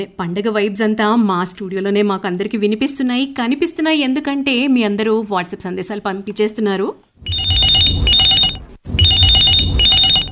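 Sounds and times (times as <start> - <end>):
speech: 0.0 - 8.2
telephone ringing with an incoming call to a studio phone-in line: 7.3 - 10.3.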